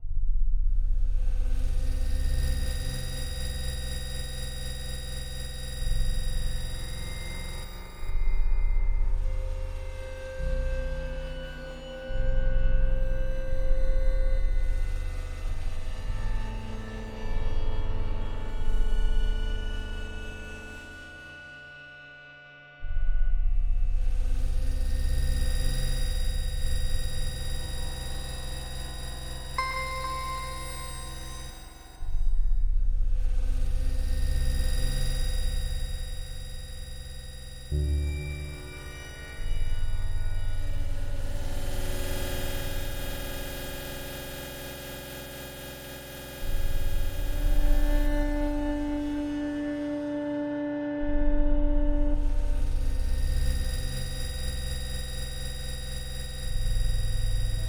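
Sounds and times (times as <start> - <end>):
glow atmospheric background: 0.3 - 21.4, 23.2 - 57.6.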